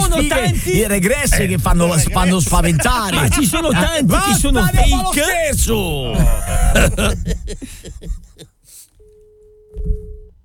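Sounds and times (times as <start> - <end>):
noise: 0.0 - 8.4, 9.0 - 10.4
laughter: 0.0 - 8.8
speech: 0.2 - 8.2
busy tone on a telephone line: 9.0 - 10.4.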